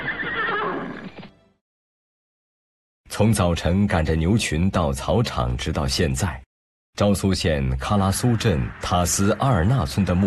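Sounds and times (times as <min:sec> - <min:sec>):
Ili horse neighing: 0:00.0 - 0:01.1
speech: 0:03.2 - 0:06.4, 0:07.0 - 0:10.2.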